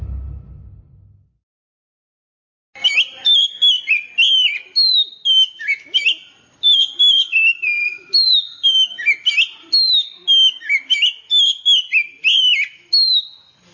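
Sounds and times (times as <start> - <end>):
Oriental magpie-robin song of clear whistled notes: 2.8 - 13.6.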